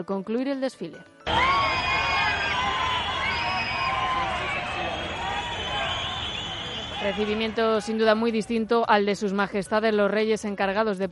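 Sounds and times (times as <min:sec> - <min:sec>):
speech: 0:00.0 - 0:01.4, 0:07.0 - 0:11.1
large crowd booing, shouting and chanting at a parade: 0:01.3 - 0:08.0.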